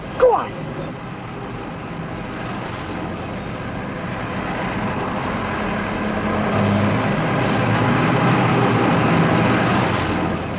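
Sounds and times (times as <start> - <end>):
vehicle roaring as a car drives past: 1.5 - 10.5.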